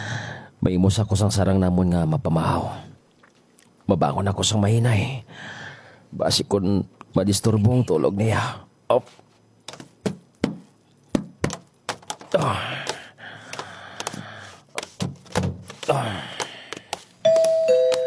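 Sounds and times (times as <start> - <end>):
speech: 0.6 - 2.9, 3.9 - 9.2, 12.3 - 12.9, 15.9 - 16.3
house electronic doorbell two-tone chime: 17.3 - 18.0.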